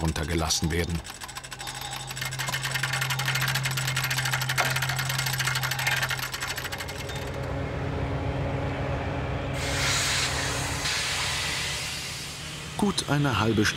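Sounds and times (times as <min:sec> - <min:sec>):
freight wagons clattering onto siding tracks: 0:00.0 - 0:07.5
locomotive engine drone while shunting freight wagons at a small station: 0:00.0 - 0:13.7
speech: 0:00.1 - 0:01.4, 0:12.8 - 0:13.7
loud rush of released air from a locomotive: 0:09.6 - 0:12.7.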